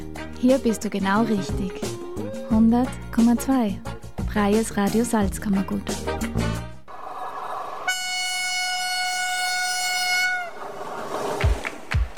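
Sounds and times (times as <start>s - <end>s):
speech: 0.4s - 6.6s
train horn sounding as a train arrives at a station platform: 7.8s - 10.8s.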